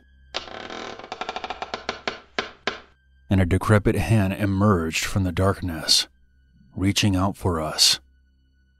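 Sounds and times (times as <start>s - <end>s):
door creaking open: 0.3s - 2.9s
speech: 3.3s - 6.1s, 6.8s - 8.0s.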